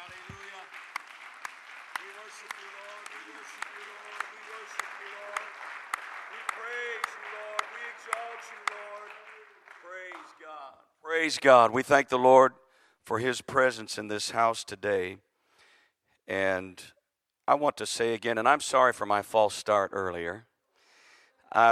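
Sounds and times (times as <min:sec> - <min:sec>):
audience clapping hands: 0:00.0 - 0:10.8
speech: 0:11.2 - 0:15.3, 0:16.3 - 0:20.5.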